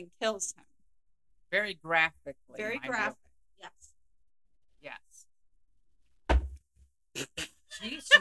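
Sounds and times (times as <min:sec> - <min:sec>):
speech: 0:00.0 - 0:00.7, 0:01.5 - 0:03.9, 0:04.8 - 0:05.1, 0:07.2 - 0:08.2
woman slamming her drink down on a table: 0:06.3 - 0:06.6.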